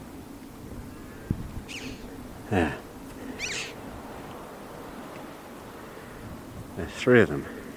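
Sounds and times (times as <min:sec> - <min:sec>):
red-billed chough calling: 0:00.9 - 0:06.2
speech: 0:02.5 - 0:02.9, 0:06.9 - 0:07.6.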